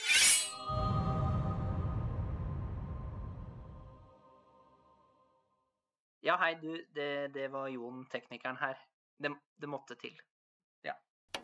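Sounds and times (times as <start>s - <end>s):
real sword drawn from its scabbard: 0.0s - 0.7s
low rumble: 0.7s - 4.4s
speech: 6.3s - 11.1s.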